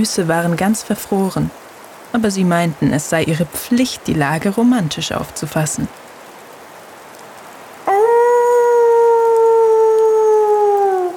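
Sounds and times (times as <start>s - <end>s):
speech: 0.0s - 6.0s
wolf howling: 7.9s - 11.1s.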